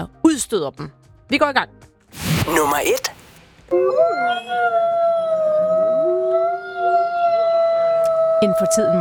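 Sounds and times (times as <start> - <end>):
speech: 0.0 - 5.8, 8.4 - 8.9
pack of wolves howling: 3.7 - 8.9.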